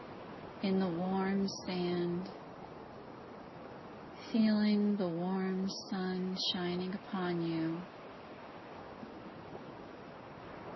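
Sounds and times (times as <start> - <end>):
ocean waves coming in on a deserted beach: 0.0 - 10.7
speech: 0.6 - 2.4, 4.3 - 8.0.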